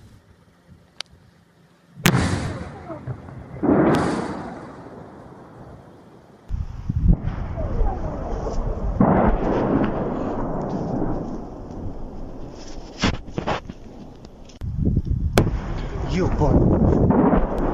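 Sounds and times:
explosions at night from air defence fire: 0:02.0 - 0:14.2, 0:15.2 - 0:17.7
wind buffeting the microphone: 0:06.5 - 0:12.5, 0:13.2 - 0:17.7.

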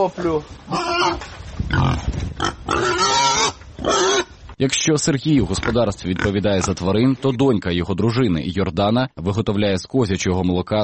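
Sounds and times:
speech: 0:00.0 - 0:02.1, 0:03.8 - 0:10.8
Hungarian Mangalica pigs grunting, snuffling and snorting: 0:00.2 - 0:04.3, 0:05.4 - 0:07.0.

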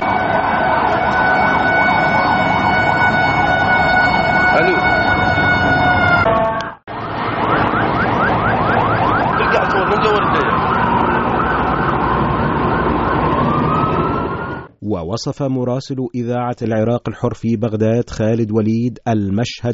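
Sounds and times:
ambulance sirens wailing at explosion site: 0:00.0 - 0:14.7
busy street noise: 0:00.0 - 0:14.9
speech: 0:15.2 - 0:19.7.

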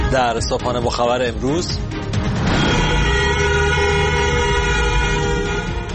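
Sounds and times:
speech: 0:00.1 - 0:01.9
several car horns honking in protest: 0:02.4 - 0:05.9.

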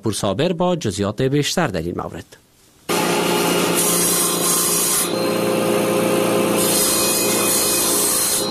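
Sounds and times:
speech: 0:00.0 - 0:02.4
electric saw cutting through a wooden board: 0:02.9 - 0:08.4.

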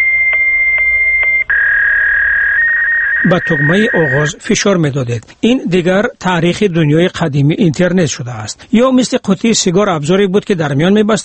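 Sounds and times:
fax machine dialing and connection tones: 0:00.0 - 0:04.4
speech: 0:03.2 - 0:11.2.

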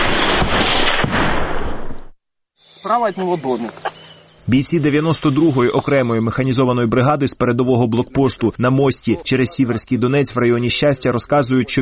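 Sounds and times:
barrage of loud blasts from shelling of Ukrainian positions: 0:00.0 - 0:02.1
speech: 0:02.8 - 0:11.7.

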